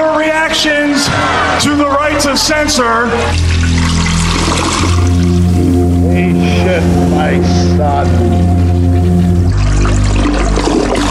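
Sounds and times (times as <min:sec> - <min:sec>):
loud toilet flush: 0:00.5 - 0:11.0
speech: 0:00.6 - 0:05.0, 0:06.2 - 0:08.9
low steady droning hum: 0:03.2 - 0:11.0.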